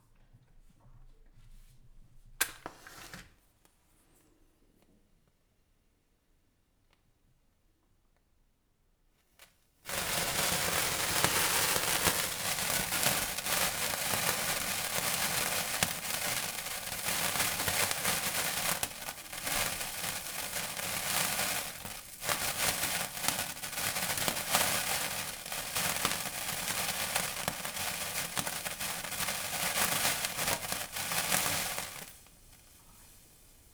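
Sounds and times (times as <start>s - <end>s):
match striking to light a sparkler: 9.9s - 33.2s
sparkler fizzing: 9.9s - 33.7s.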